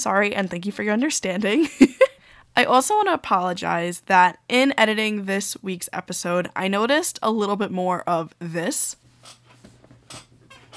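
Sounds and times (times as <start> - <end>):
speech: 0.0 - 9.4
squeaky chair creaking: 9.0 - 10.7.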